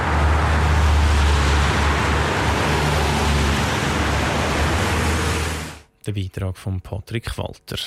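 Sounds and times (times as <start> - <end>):
heavy road traffic roar of cars and trucks: 0.0 - 5.9
speech: 6.1 - 7.8.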